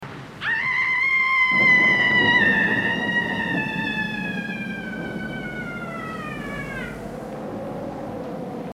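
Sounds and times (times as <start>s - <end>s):
woman screaming: 0.4s - 7.0s.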